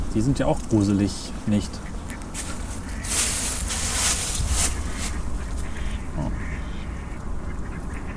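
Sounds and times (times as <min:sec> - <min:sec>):
speech: 0:00.1 - 0:02.5
ducks quacking in short bursts: 0:01.5 - 0:08.1.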